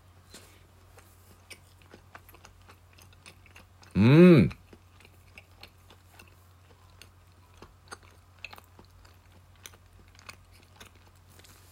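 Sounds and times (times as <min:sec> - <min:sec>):
chewing a teriyaki egg sandwich: 0:00.3 - 0:11.7
person humming: 0:03.9 - 0:04.6.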